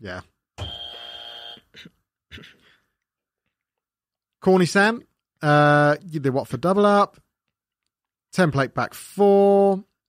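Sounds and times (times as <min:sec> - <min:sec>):
speech: 0:00.0 - 0:00.3, 0:04.4 - 0:07.2, 0:08.3 - 0:09.9
loud harsh electronic buzzer: 0:00.6 - 0:01.7.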